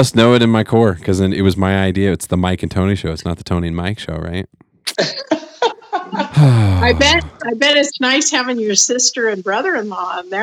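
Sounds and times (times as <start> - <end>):
speech: 0.0 - 5.5, 6.1 - 10.4
woman coughing: 4.9 - 5.6, 6.2 - 7.3
laughter: 5.0 - 7.4.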